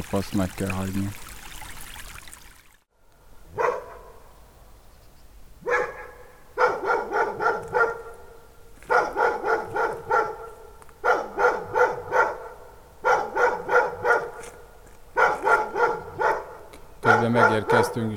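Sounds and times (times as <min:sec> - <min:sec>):
speech: 0:00.1 - 0:01.3, 0:18.0 - 0:18.1
dog barking near a hill, barks echoing strongly: 0:03.5 - 0:04.2, 0:05.6 - 0:14.4, 0:15.2 - 0:18.1.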